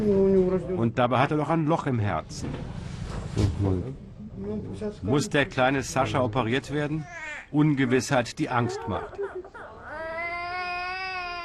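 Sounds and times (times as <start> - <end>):
speech: 0.0 - 2.8, 3.4 - 9.3
infant crying during blood draw: 7.0 - 7.5, 8.6 - 11.4.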